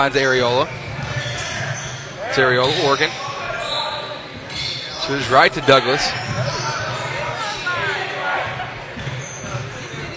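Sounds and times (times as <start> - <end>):
speech: 0.0 - 0.9, 2.3 - 3.2, 5.1 - 6.6
faint crowd noise: 0.0 - 10.1
basketball dribbled during a game: 0.7 - 2.0, 8.9 - 10.1.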